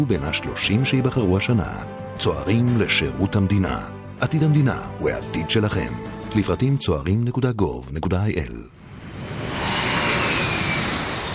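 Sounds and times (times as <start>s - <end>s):
speech: 0.0s - 8.8s
airplane engine roaring on takeoff: 8.7s - 11.3s.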